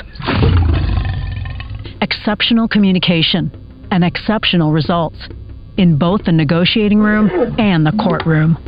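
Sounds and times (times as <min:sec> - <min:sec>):
lion roaring: 0:00.2 - 0:01.8
speech: 0:02.0 - 0:08.6.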